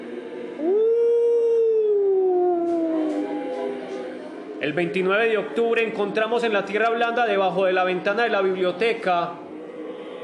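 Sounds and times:
eerie demonic howl sliding downward in pitch: 0.4 - 4.1
speech: 4.6 - 9.4.

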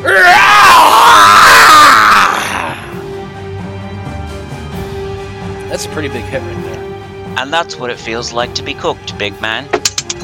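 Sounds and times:
troll screeching in pain after being scorched by fire: 0.0 - 2.9
speech: 6.0 - 10.2.

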